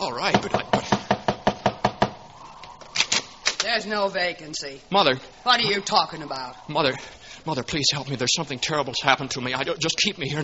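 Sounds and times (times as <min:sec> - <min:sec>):
speech: 0:00.1 - 0:00.7, 0:03.8 - 0:10.4
knocking on the wooden door of a boarding house: 0:00.3 - 0:02.2.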